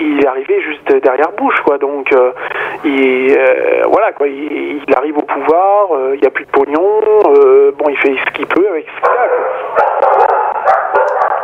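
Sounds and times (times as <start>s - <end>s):
speech: 0.3s - 10.2s
several dogs barking and yapping: 9.0s - 11.4s.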